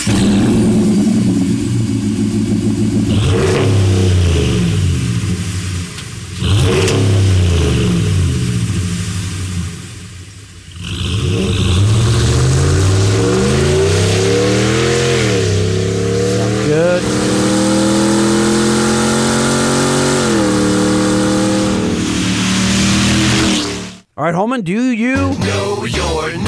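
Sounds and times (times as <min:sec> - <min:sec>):
truck engine revving through an aggressive aftermarket exhaust: 0:00.0 - 0:09.9, 0:10.7 - 0:24.1, 0:25.1 - 0:26.4.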